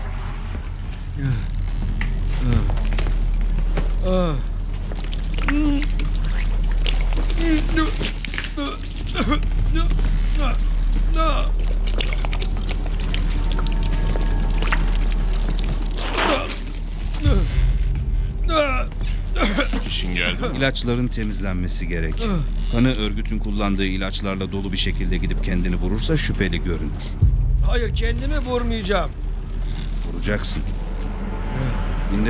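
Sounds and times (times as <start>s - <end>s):
low steady hum: 0.0s - 32.2s
speech: 1.2s - 1.5s, 20.6s - 29.2s, 30.2s - 30.8s
water being poured for a man, trickling and splashing: 2.1s - 26.3s.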